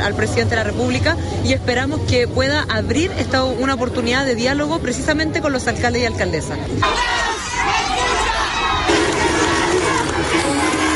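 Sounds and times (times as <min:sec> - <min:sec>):
speech: 0:00.0 - 0:07.2
crowd shouting, jeering and booing at a theatre exit in La Serena, Chile: 0:06.8 - 0:10.9
scattered applause from supporters: 0:06.8 - 0:10.9.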